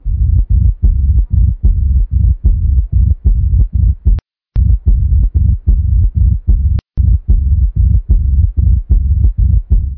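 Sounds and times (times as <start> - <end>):
heart murmur: 0.0 - 9.9.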